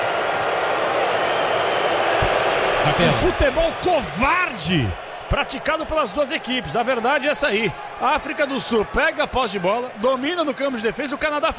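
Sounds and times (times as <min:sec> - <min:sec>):
stadium crowd booing: 0:00.0 - 0:11.5
speech: 0:02.8 - 0:11.5.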